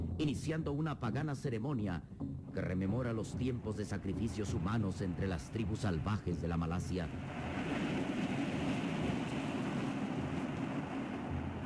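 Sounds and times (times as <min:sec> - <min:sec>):
speech: 0:00.2 - 0:07.6
waves crashing against rocky cliffs: 0:07.1 - 0:11.6.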